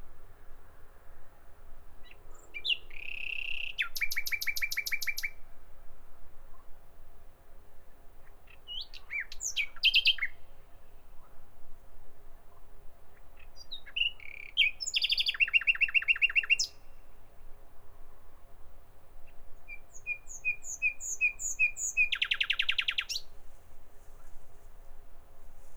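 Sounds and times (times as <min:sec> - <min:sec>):
common nightingale song: 0:02.0 - 0:05.3, 0:08.4 - 0:10.6, 0:13.4 - 0:16.9, 0:19.2 - 0:23.4.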